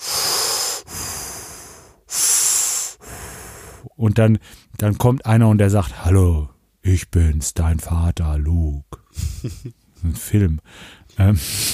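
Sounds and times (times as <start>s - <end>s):
person imitating heavy mechanical respirator breathing: 0.0s - 4.0s
speech: 4.0s - 11.7s
laughter: 9.2s - 9.7s.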